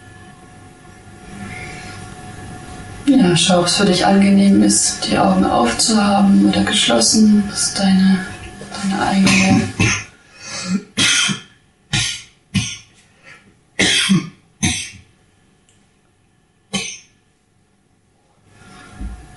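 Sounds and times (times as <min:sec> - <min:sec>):
speech: 0:03.1 - 0:10.0
person coughing harshly: 0:09.2 - 0:12.9, 0:13.8 - 0:15.1, 0:16.7 - 0:17.1.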